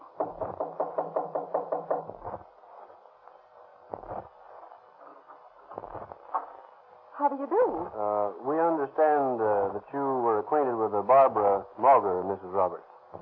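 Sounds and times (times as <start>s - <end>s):
knocking on an apartment door at the top of the stairs: 0.1s - 2.4s
speech: 7.2s - 12.9s.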